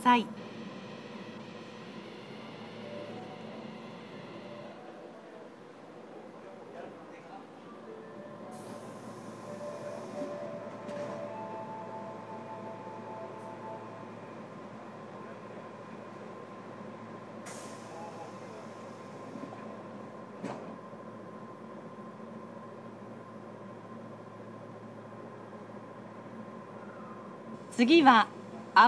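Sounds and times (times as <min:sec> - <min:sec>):
speech: 0:00.0 - 0:00.4, 0:27.8 - 0:28.8
faint tonal whines: 0:00.0 - 0:05.8, 0:07.6 - 0:17.3, 0:21.7 - 0:27.8
subway train rumbling along the track between stations: 0:00.0 - 0:28.8.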